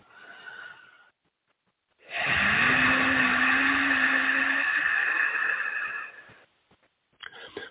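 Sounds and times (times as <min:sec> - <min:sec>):
breathy sound: 0:00.0 - 0:01.2, 0:02.0 - 0:06.4
strained hum forced from a constricted throat via epiglottis: 0:02.1 - 0:06.4.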